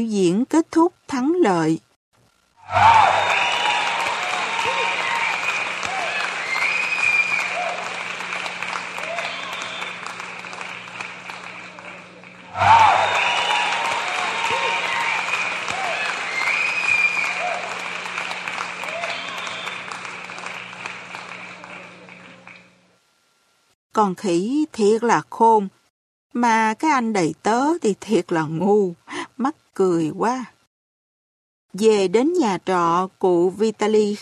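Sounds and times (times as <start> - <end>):
speech: 0.0 - 1.9, 2.7 - 3.5, 24.0 - 25.8, 26.4 - 30.5, 31.7 - 34.2
audience applause at the end of a stage performance: 2.6 - 22.8.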